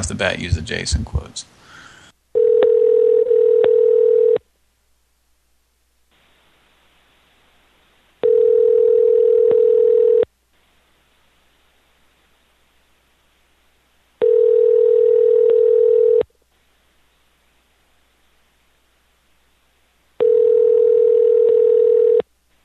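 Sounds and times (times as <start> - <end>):
speech: 0.0 - 1.6
telephone tone while a call is being placed: 2.3 - 4.4, 8.2 - 10.3, 14.2 - 16.3, 20.2 - 22.3.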